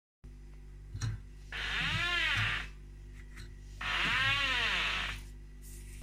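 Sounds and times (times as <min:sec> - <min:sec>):
Indesit BTW SRN washing machine creaking: 0:01.0 - 0:02.8, 0:03.8 - 0:05.2.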